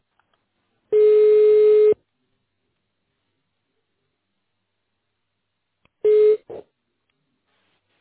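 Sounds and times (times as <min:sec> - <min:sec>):
telephone busy signal: 0:00.9 - 0:01.9, 0:06.1 - 0:06.5.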